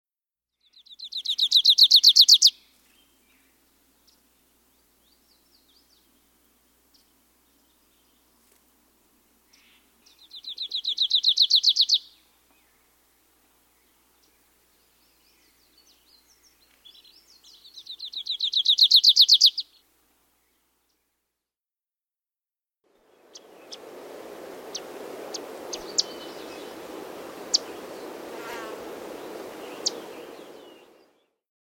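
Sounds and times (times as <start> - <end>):
Grace's warbler singing: 0.6 - 8.3, 9.5 - 12.9, 13.8 - 19.8, 24.6 - 31.3.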